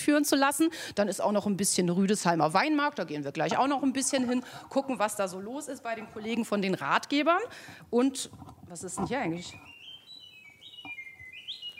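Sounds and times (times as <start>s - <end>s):
speech: 0.1s - 9.7s
birds chirping with thin high whistled calls: 8.9s - 11.7s.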